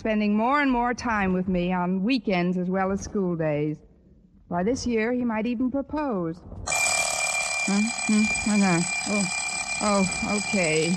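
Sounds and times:
speech: 0.0s - 3.9s, 4.5s - 6.7s, 7.7s - 10.9s
alarm clock ringing: 6.7s - 10.9s.

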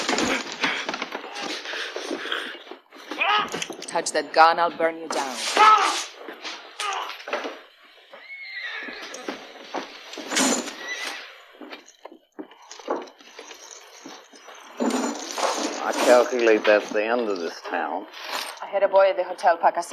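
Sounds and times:
hooves clopping on hard ground: 0.0s - 17.4s
speech: 3.9s - 5.9s, 16.1s - 19.9s
horse neighing: 8.1s - 9.6s, 10.6s - 11.4s.

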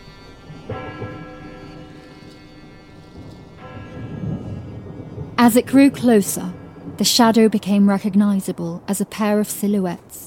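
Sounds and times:
deep town bell tolling: 0.0s - 8.0s
low rumbling storm-like background: 2.6s - 10.2s
speech: 5.4s - 10.2s.

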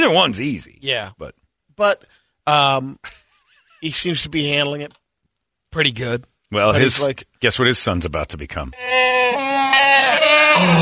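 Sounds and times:
speech: 0.0s - 3.2s, 3.8s - 5.0s, 5.7s - 10.8s
goat bleating: 8.8s - 10.8s.

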